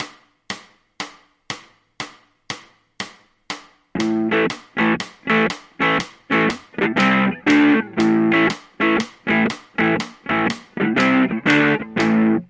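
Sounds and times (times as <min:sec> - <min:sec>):
blues music: 0:03.0 - 0:12.4.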